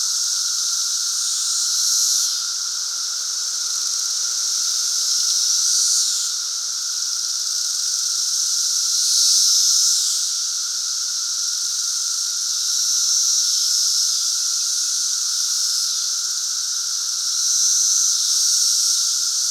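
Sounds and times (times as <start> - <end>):
cicada chorus during the 220-year cicada emergence: 0.0 - 19.5.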